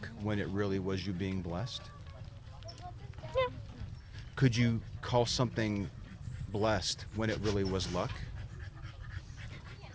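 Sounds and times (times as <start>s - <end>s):
speech: 0.2s - 2.0s, 4.4s - 8.3s
struggling dog panting heavily: 4.0s - 9.9s.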